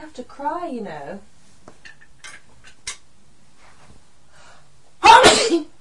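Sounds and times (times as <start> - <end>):
speech: 0.2 - 1.3
faint breathy sounds: 3.6 - 4.8
single loud sneeze: 5.0 - 5.7.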